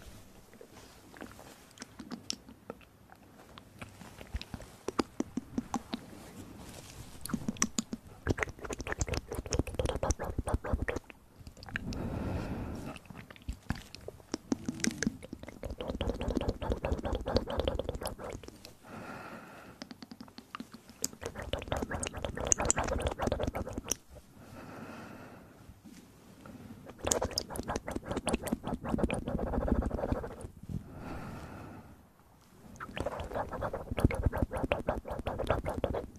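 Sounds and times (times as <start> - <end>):
wet mouth sounds with spitting, smacking and chewing-like clicks: 0.5 - 6.3, 7.2 - 12.0, 12.8 - 18.8, 19.8 - 24.2, 26.8 - 30.6, 32.7 - 36.1.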